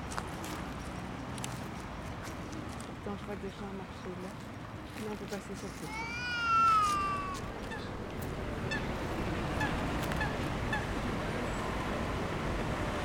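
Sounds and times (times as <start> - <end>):
outdoor noise by ponds: 0.0 - 13.0
speech: 3.0 - 6.4
moorhen calling by ponds: 5.9 - 8.0, 8.6 - 11.0.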